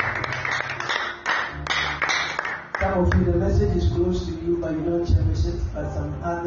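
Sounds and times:
sharp hand claps from a young boy at a gospel preaching gathering: 0.0s - 3.3s
speech: 3.0s - 6.4s.

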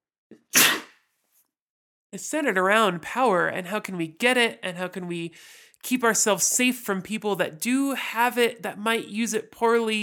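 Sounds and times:
human sneeze: 0.4s - 1.0s
speech: 2.1s - 10.0s.

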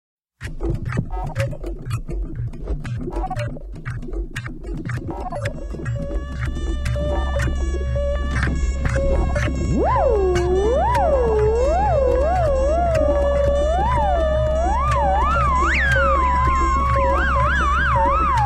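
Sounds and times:
speech: 0.4s - 1.9s
buzzing guitars: 0.4s - 18.4s
grungy heavily distorted rock cover of a spy film theme: 0.4s - 18.4s.

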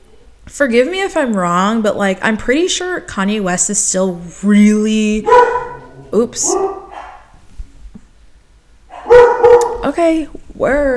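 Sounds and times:
speech: 0.5s - 6.8s, 10.0s - 10.9s
dogs barking: 5.2s - 7.4s, 8.9s - 9.9s.

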